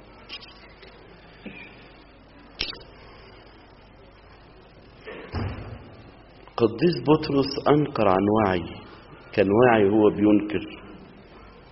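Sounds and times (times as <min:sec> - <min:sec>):
heavier door slam: 0:05.2 - 0:06.0
speech: 0:06.6 - 0:08.8, 0:09.4 - 0:10.8.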